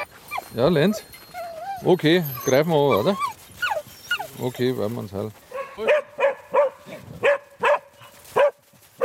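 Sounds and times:
hunting dogs whimpering: 0.2s - 4.8s
speech: 0.5s - 1.2s, 1.8s - 3.4s, 4.4s - 5.9s
hunting dogs barking on a hunt: 5.5s - 9.0s.

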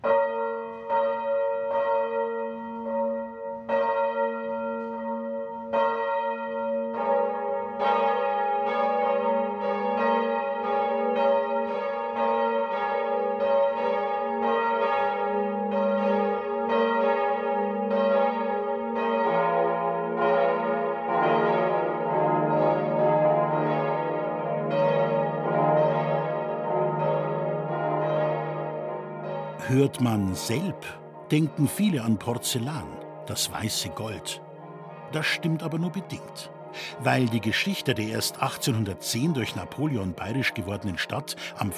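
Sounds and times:
noon bells ringing from a Catholic parish church in an Upper Franconian porcelain town: 0.0s - 41.7s
speech: 29.7s - 34.4s, 35.1s - 41.7s.

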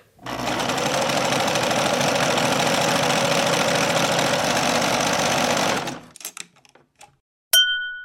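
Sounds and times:
electric sewing machine whirring: 0.2s - 6.2s
bright metallic ding: 7.5s - 8.0s.

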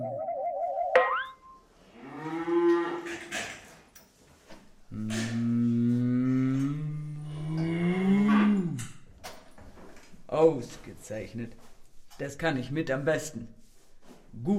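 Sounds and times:
brief warbling chime: 0.0s - 1.6s
cow mooing: 2.0s - 3.2s, 4.9s - 9.0s
speech: 10.5s - 13.6s, 14.4s - 14.5s.

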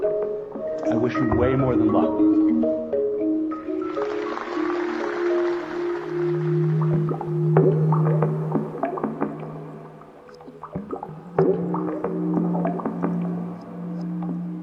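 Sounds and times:
bubbling water-themed musical composition with gurgling textures: 0.0s - 14.6s
speech: 0.8s - 2.9s
sustained humming low tones: 5.9s - 14.6s.

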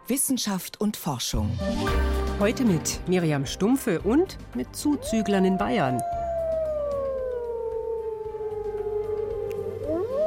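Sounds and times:
speech: 0.1s - 6.2s
wolves howling in a chorus: 4.9s - 10.2s.

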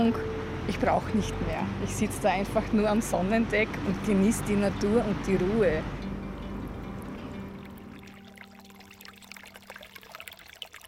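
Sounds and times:
speech: 0.0s - 6.0s
babbling brook beside reeds on the shore of the Simsee lake: 7.0s - 10.8s.

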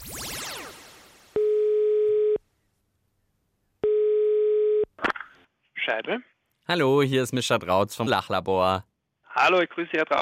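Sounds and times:
descending swoosh: 0.0s - 1.4s
telephone ringing tones before a call connects: 1.4s - 2.4s, 3.8s - 4.9s
speech: 5.9s - 10.2s.

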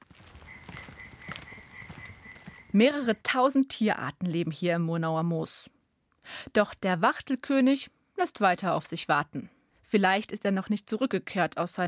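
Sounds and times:
European tree frogs croaking in a moor: 0.0s - 3.0s
speech: 2.8s - 11.8s.

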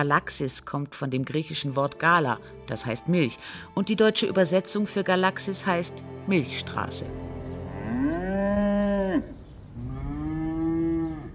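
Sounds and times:
speech: 0.0s - 7.2s
cow mooing with a long low bellow: 7.6s - 11.3s.

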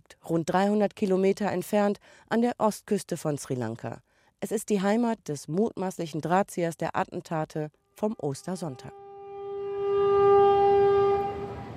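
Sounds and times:
speech: 0.2s - 9.0s
passenger train horn blast: 8.7s - 11.7s
passenger train in Sri Lanka rumbling along the rails: 9.8s - 11.7s.

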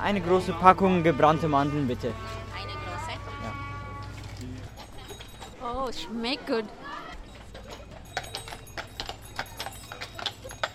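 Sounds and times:
speech: 0.0s - 2.7s, 5.9s - 6.8s
horse hooves clip-clopping of a horse-drawn stagecoach: 0.0s - 10.7s
low outdoor hum: 0.3s - 5.6s
faint metallic jingles: 2.1s - 10.7s.

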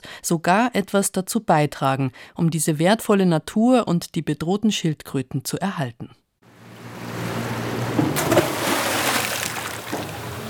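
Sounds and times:
speech: 0.2s - 6.2s
steady boat engine hum: 6.5s - 10.4s
anchor splashing into shallow water: 7.8s - 10.4s
lapping water: 8.2s - 10.4s.

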